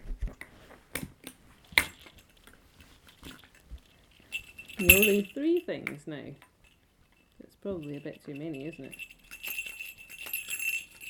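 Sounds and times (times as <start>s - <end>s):
small toy bell jingling: 4.2s - 5.8s, 6.6s - 11.0s
speech: 4.8s - 6.5s, 7.6s - 9.1s.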